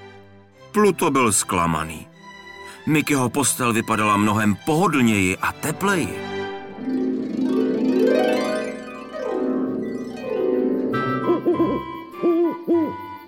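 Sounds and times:
soft music: 0.0 - 13.2
speech: 0.7 - 2.2, 2.8 - 7.0
owl hooting at night outside a forest cabin window: 11.0 - 13.2.

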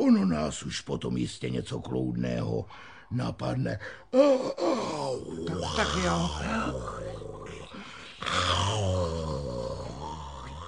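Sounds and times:
speech: 0.0 - 7.1, 8.2 - 9.3
sleeping dogs growling and grunting: 4.8 - 10.6.

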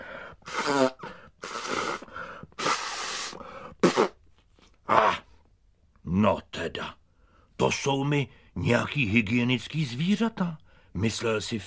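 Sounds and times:
sniffly breaths: 0.0 - 4.0
loud nose blowing into a handkerchief: 0.4 - 4.2
speech: 7.7 - 11.6.

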